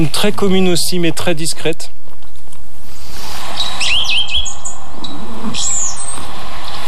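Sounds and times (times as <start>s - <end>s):
speech: 0.0s - 2.0s
rushing noise: 0.0s - 6.8s
blue tit song of two to four repeated notes: 3.5s - 6.8s.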